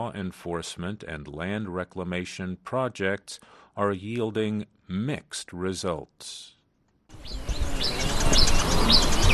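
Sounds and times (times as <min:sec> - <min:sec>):
speech: 0:00.0 - 0:06.6, 0:07.2 - 0:09.3
birds chirping and whistling at a forest mining site: 0:07.1 - 0:09.3.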